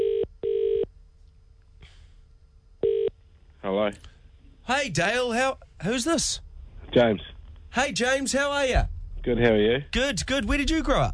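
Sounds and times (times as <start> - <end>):
telephone ringback tone in a double-ring pattern: 0.0 - 0.8, 2.8 - 3.1
speech: 3.6 - 11.1.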